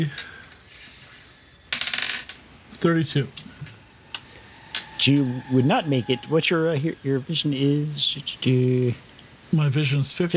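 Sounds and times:
speech: 0.0 - 0.2, 2.8 - 3.4, 5.0 - 10.3
dice clattering across a hard tabletop: 1.7 - 2.4.

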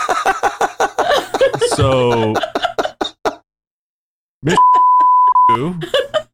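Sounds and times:
people laughing: 0.0 - 3.4, 4.4 - 6.3
speech: 1.8 - 2.6
censorship bleep tone over a voice: 4.5 - 5.7.

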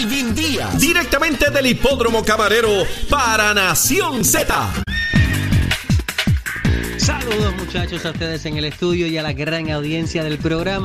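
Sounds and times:
speech: 0.0 - 5.4, 6.7 - 10.8
horse whinny sound effect: 4.9 - 6.0.

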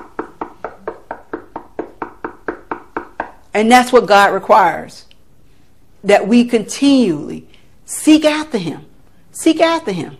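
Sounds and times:
firm knocks on a hard surface: 0.0 - 3.4
speech: 3.6 - 5.1, 6.0 - 10.1.

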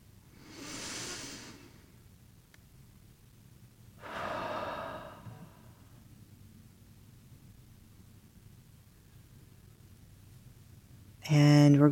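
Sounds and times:
deep breathing during a guided meditation: 0.3 - 2.0, 4.0 - 6.1.

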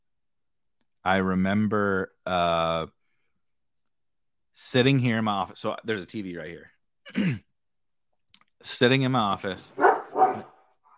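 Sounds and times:
speech: 1.0 - 3.0, 4.6 - 7.5, 8.6 - 9.9
dog barking: 9.8 - 10.6.

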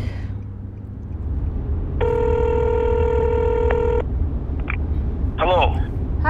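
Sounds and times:
low constant rumble: 0.0 - 6.2
outgoing phone call electronic ringback tone: 2.0 - 4.0.

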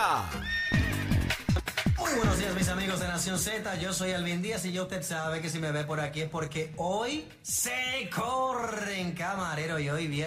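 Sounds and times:
speech: 0.0 - 0.4, 2.2 - 10.2
horse whinnying: 0.0 - 1.3.

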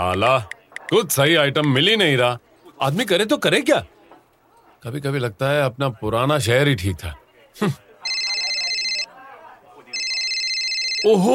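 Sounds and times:
speech: 0.0 - 3.9, 4.8 - 7.8, 11.0 - 11.3
quiet murmur: 0.0 - 11.3
phone ringing with a bright electronic trill: 8.0 - 9.1, 9.9 - 11.3.

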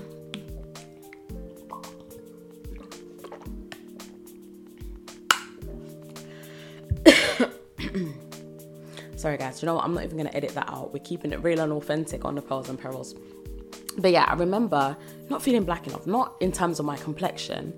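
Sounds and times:
person gulping water: 0.1 - 4.2
person coughing or clearing throat: 6.9 - 8.3
speech: 8.0 - 8.2, 9.2 - 13.4, 14.0 - 17.7.

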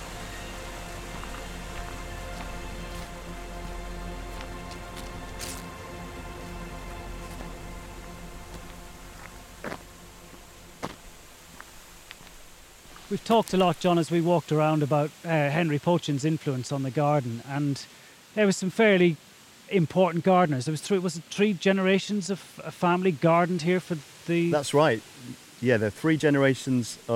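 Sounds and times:
rushing river water: 0.0 - 27.1
speech: 13.1 - 27.1.

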